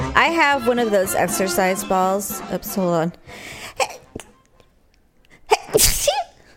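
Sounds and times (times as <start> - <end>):
speech: 0.2 - 4.0
single loud sneeze: 5.5 - 6.4.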